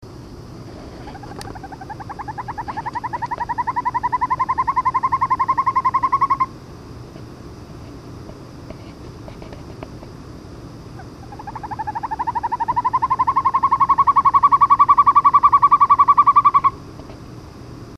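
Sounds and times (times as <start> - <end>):
hawk owl calling: 1.0 - 6.6, 10.9 - 16.8.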